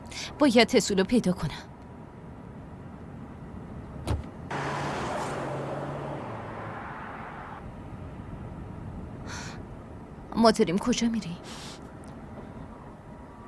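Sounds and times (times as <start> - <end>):
speech: 0.3 - 1.7, 10.4 - 11.7
low road rumble: 1.3 - 13.4
car engine humming heard from inside the cabin: 3.1 - 9.2.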